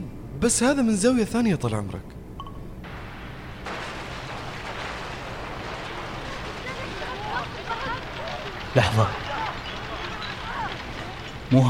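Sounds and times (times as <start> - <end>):
speech: 0.4 - 2.2, 8.8 - 9.2
faint crackling: 2.8 - 11.6
yacht explosion at night in recorded footage: 2.8 - 11.6.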